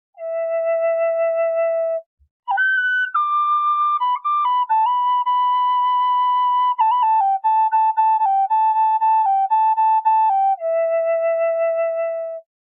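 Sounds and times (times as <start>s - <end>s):
high E note on a Native American flute: 0.2s - 12.5s.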